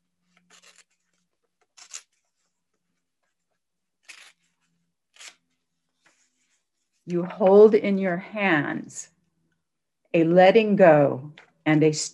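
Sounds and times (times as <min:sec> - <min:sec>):
paper being torn along a fold: 0:00.3 - 0:02.2, 0:04.0 - 0:05.5
speech: 0:07.1 - 0:09.2, 0:10.1 - 0:12.1.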